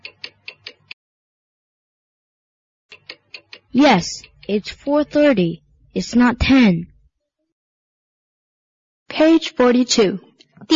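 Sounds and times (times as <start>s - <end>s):
upside-down clock ticking: 0.0s - 1.0s, 2.9s - 6.7s
speech: 3.7s - 6.9s, 9.2s - 10.7s.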